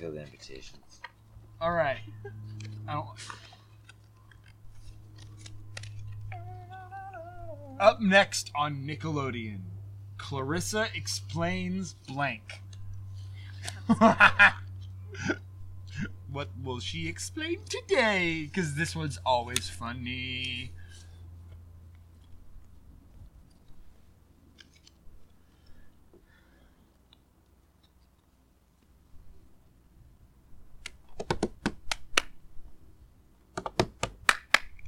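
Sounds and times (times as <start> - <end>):
speech: 0.0 - 3.5, 7.8 - 12.6, 13.9 - 20.8
playing cards being shuffled: 2.5 - 6.4, 22.0 - 25.7, 30.8 - 32.4, 33.6 - 34.7
faint voice sounds: 6.3 - 8.7
laughter: 13.5 - 15.4.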